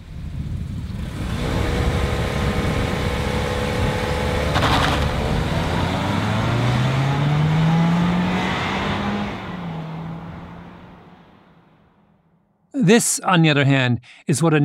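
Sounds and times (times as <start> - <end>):
four-cylinder car engine revving: 0.6 - 12.0
speech: 12.8 - 14.6.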